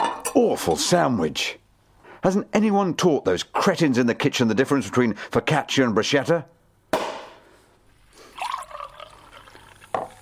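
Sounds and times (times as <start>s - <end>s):
speech: 0.4s - 1.6s, 2.2s - 6.6s
sparkling wine pouring into a glass: 8.1s - 10.2s.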